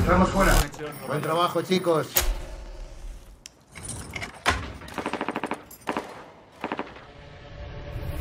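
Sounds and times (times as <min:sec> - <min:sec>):
speech: 0:00.2 - 0:02.3
automatic gunfire from an armed attack on athletes in an Olympic Village: 0:04.9 - 0:07.2.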